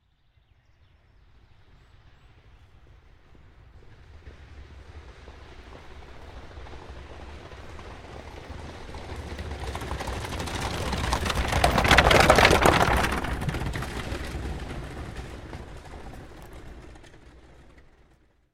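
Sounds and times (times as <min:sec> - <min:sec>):
horse-drawn carriage going by fast: 0:02.2 - 0:18.5.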